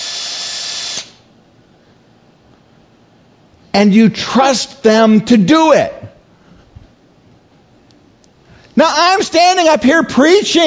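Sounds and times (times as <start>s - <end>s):
dentist's drill whirring: 0.0s - 1.2s
speech: 3.8s - 6.0s, 8.8s - 10.6s.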